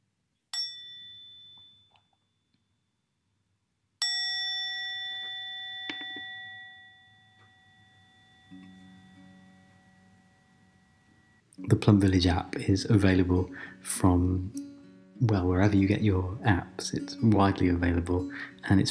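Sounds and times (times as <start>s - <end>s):
mindfulness bell ringing: 0.6s - 2.2s, 4.0s - 12.4s
speech: 11.6s - 18.9s.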